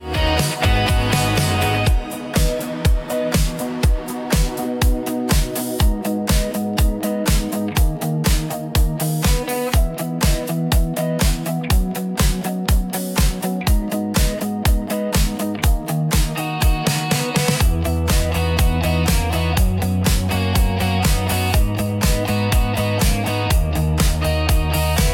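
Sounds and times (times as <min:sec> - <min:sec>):
corner shop business music beat: 0:00.0 - 0:25.1.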